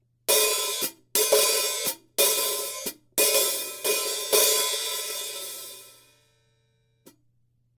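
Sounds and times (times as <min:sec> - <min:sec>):
hi-hat cymbal pattern: 0:00.3 - 0:06.2.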